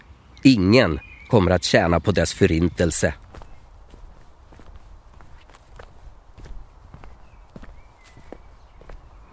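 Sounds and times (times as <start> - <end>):
outdoor ambience: 0.0 - 9.3
speech: 0.4 - 3.2
footsteps crunching along an outdoor forest path: 2.5 - 9.3.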